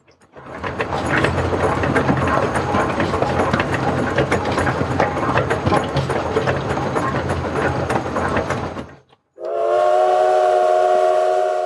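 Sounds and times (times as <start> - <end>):
steam train chugging and rattling: 0.0 - 11.6
steam train whistle: 9.4 - 11.6.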